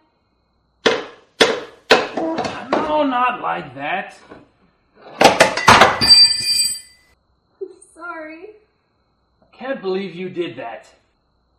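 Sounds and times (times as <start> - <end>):
hammer striking to drive something in: 0.8 - 3.0
speech: 3.0 - 4.5, 9.6 - 11.0.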